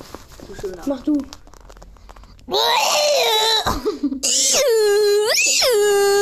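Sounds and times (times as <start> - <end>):
speech: 0.5 - 1.4, 2.5 - 6.2
man shrieking in falsetto imitating a girl's scream: 2.5 - 6.2.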